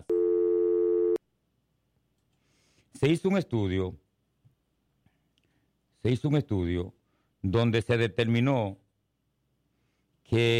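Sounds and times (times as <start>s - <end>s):
telephone call signal tone beep as a call is taken: 0.0s - 1.2s
speech: 3.0s - 4.0s, 6.0s - 8.8s, 10.3s - 10.5s.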